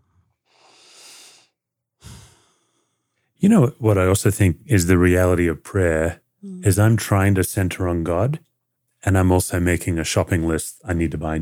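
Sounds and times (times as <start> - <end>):
person taking a deep breath at the start of a prayer: 0.0 - 3.3
speech: 3.4 - 11.3.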